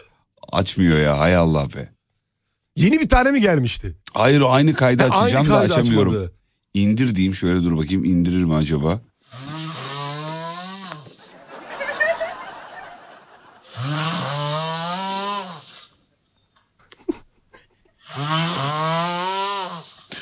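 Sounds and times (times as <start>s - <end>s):
speech: 0.5s - 2.0s, 2.8s - 9.4s
laughter: 4.7s - 6.1s, 11.2s - 13.7s
two people snoring in alternating tones: 9.2s - 16.0s, 18.0s - 20.2s
breathy exhale: 19.7s - 20.2s.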